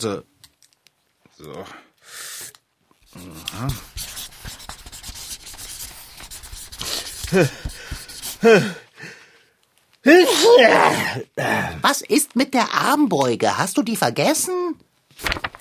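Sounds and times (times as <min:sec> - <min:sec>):
speech: 0:00.0 - 0:00.3, 0:01.4 - 0:02.3, 0:03.1 - 0:04.6, 0:07.3 - 0:07.8, 0:08.4 - 0:09.1, 0:10.0 - 0:15.5
pen scratching across a sheet of paper: 0:03.0 - 0:08.5
person making breathy vocal sounds and laugh-like noises: 0:06.9 - 0:09.2.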